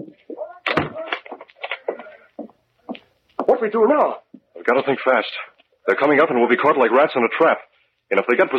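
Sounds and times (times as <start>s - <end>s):
door pushed shut with a sharp bang: 0.6s - 1.2s
speech: 3.6s - 8.5s.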